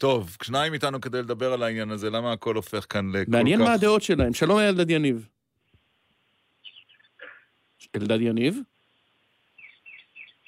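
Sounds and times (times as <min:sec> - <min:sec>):
speech: 0:00.0 - 0:05.4, 0:07.8 - 0:08.7
birds chirping faintly: 0:06.6 - 0:07.5, 0:09.5 - 0:10.4.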